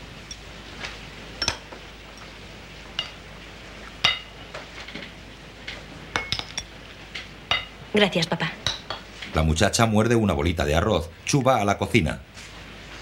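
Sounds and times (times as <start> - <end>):
dishes and cutlery clinking as food is served at a dining table: 1.4 - 2.2, 4.0 - 5.1, 6.2 - 6.7, 7.5 - 7.8
speech: 7.9 - 8.7, 9.3 - 12.3.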